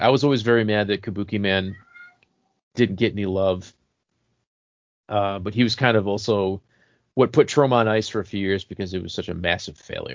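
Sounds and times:
speech: 0.0 - 1.8, 2.8 - 3.8, 5.1 - 10.1
cat meowing: 1.7 - 2.2.

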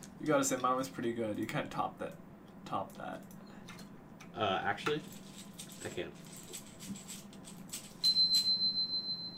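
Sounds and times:
speech: 0.2 - 3.4, 4.4 - 6.3
bell chime transition sound effect: 8.0 - 9.3.

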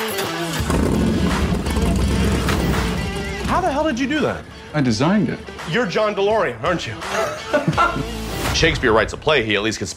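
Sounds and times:
car engine cranking, starting and idling: 0.6 - 7.1
speech: 3.6 - 9.9
laughter: 7.0 - 8.3.

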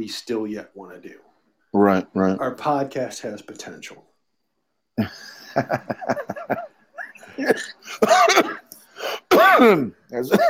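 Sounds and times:
speech: 0.0 - 4.1, 5.0 - 6.7, 7.4 - 10.4
laughter: 5.0 - 8.0
person sneezing: 7.2 - 10.4.

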